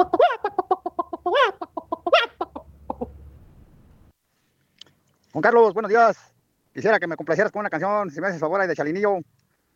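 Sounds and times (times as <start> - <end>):
chicken clucking: 0.0 - 3.2
speech: 5.4 - 9.3.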